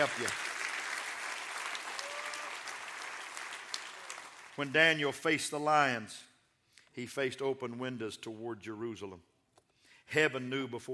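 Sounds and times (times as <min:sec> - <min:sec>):
speech: 0:00.0 - 0:00.5, 0:04.6 - 0:06.3, 0:07.0 - 0:09.3, 0:10.1 - 0:10.9
audience applause: 0:00.0 - 0:04.7.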